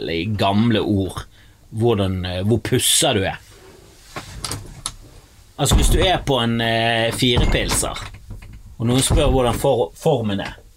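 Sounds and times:
speech: 0.0 - 3.5, 5.6 - 8.2, 8.8 - 10.6
door pushed shut with a muffled thud: 5.7 - 9.8.

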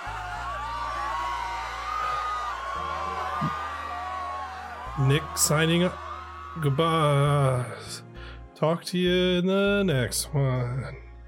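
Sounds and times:
several voices screaming and yelling: 0.0 - 7.9
speech: 3.4 - 3.6, 5.0 - 6.0, 6.6 - 11.0.

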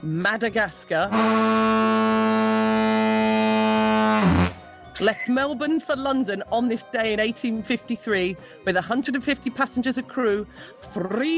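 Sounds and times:
speech: 0.0 - 2.6, 4.2 - 11.3
deep sustained ship's foghorn blast: 1.1 - 4.8.

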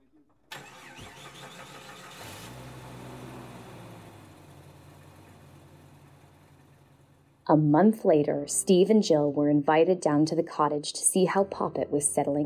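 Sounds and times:
car engine cranking and catching: 0.0 - 7.5
speech: 7.5 - 12.4.

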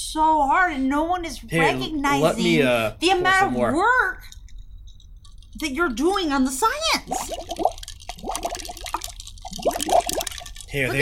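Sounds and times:
speech: 0.0 - 4.4, 5.6 - 8.5, 10.7 - 10.9
bubbles blown through a straw into a thick milkshake: 7.0 - 10.8.

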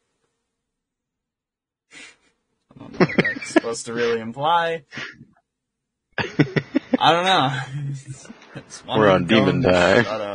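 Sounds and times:
burst of breath hitting the microphone: 1.9 - 2.3
laughter: 2.8 - 4.3, 6.2 - 10.0
speech: 3.6 - 5.2, 6.4 - 10.3.

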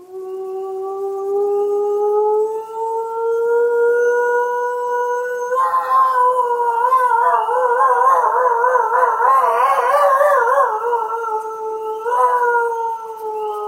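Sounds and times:
lone wolf and pack howling in chorus: 0.0 - 13.6
young wolves shouting and roaring: 5.4 - 13.6.

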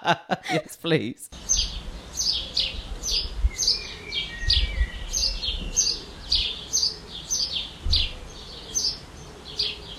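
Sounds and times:
laughter: 0.0 - 0.8
speech: 0.0 - 1.5
robin singing outdoors: 1.3 - 9.9
low rumble of wind or noise: 1.4 - 6.5.

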